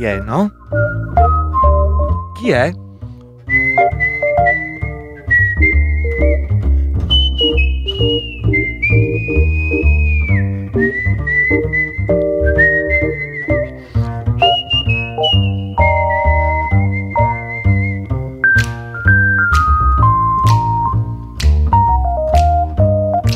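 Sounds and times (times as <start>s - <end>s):
speech: 0.0s - 1.0s, 2.4s - 2.8s
full instrumental backing with steady bass and chords: 0.0s - 23.3s
person whistling a clear lilting melody: 0.1s - 2.4s, 3.5s - 21.0s.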